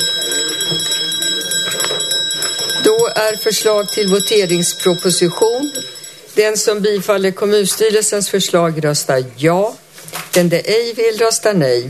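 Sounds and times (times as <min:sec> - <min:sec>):
electric bell ringing to call municipal council members in for a vote: 0:00.0 - 0:07.0
speech: 0:03.0 - 0:11.8.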